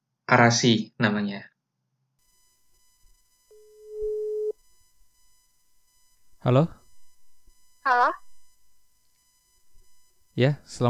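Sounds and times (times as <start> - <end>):
speech: 0.3 - 1.5, 6.4 - 6.8, 10.4 - 10.8
telephone ringback tone: 2.4 - 10.8.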